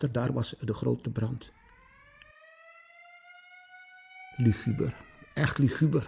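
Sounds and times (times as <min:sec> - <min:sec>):
speech: 0:00.0 - 0:01.6, 0:04.4 - 0:06.0
wailing siren: 0:01.2 - 0:06.0.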